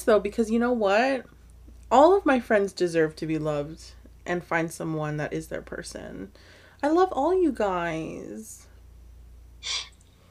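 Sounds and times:
speech: 0:00.0 - 0:08.7, 0:09.6 - 0:09.9
nose sniffle: 0:09.6 - 0:10.0.

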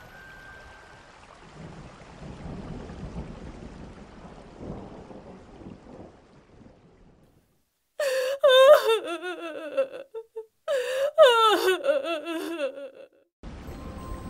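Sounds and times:
mother crying in anguished wailing sobs while on the phone: 0:08.0 - 0:13.3.

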